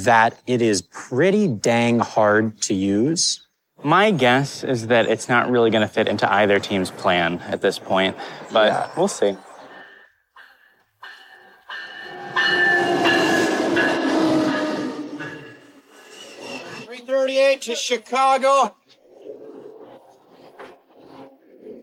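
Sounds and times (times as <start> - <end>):
speech: 0.0 - 9.5, 17.3 - 18.8
train rumbling and grinding along the rails: 5.7 - 16.9.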